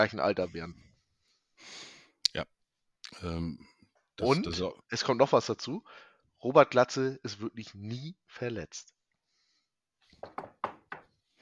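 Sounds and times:
speech: 0.0 - 0.9, 1.6 - 9.0, 10.2 - 10.6
knocking on a wooden surface: 10.2 - 11.1.

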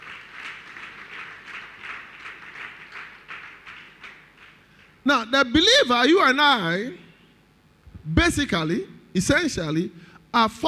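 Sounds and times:
audience applause: 0.0 - 4.7
speech: 5.0 - 7.0, 8.2 - 10.6.

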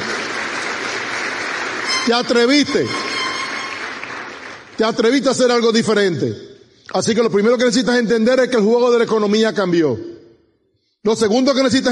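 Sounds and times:
crowd applauding: 0.0 - 5.6
speech: 2.0 - 3.1, 4.8 - 10.1, 11.0 - 11.9.

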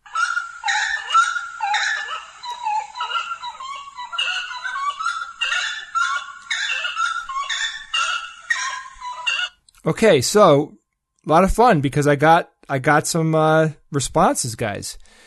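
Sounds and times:
bird honking calls: 0.0 - 9.6
speech: 9.8 - 15.2.

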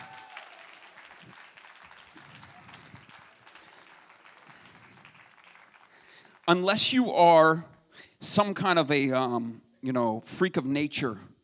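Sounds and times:
audience applause: 0.0 - 6.6
speech: 6.5 - 7.7, 8.3 - 11.3.

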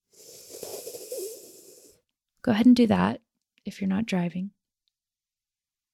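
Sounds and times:
hissing wheezy inhale through a tongue curled inward: 0.0 - 2.0
speech: 2.4 - 4.6.

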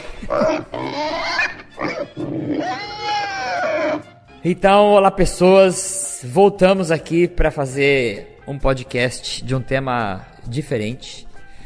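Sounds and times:
pig grunting and squealing: 0.1 - 4.2
speech: 0.2 - 3.0, 4.4 - 11.3.

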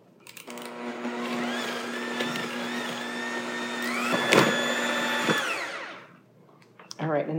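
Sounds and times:
electric mixer creaming eggs with vanilla: 0.5 - 6.2.

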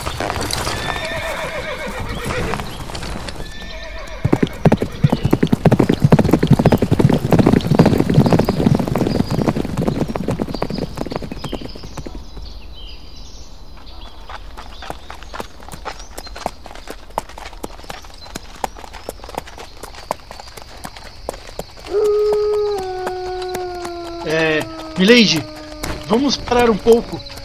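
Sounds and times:
many horse hooves clip-clopping as mounted men set off: 0.0 - 12.5, 13.8 - 27.4
horse whinnying: 0.1 - 5.3, 21.9 - 27.4
speech: 25.0 - 25.5, 26.1 - 27.3.

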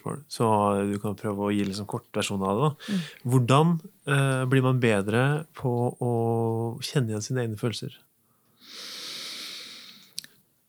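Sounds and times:
speech: 0.0 - 8.1
soft mouth clicks: 0.9 - 4.6, 9.0 - 10.4
person breathing deliberately: 2.8 - 3.3, 8.4 - 10.2.

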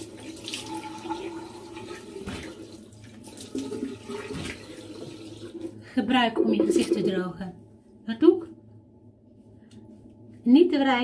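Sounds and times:
running tap water splashing as a face is rinsed with lukewarm water: 1.8 - 5.3
speech: 6.0 - 8.3, 10.5 - 11.0.

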